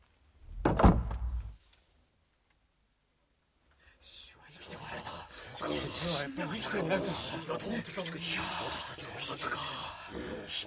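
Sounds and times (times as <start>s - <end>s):
door being shut and barred with a bolt: 0.6s - 1.5s
speech: 6.3s - 10.6s.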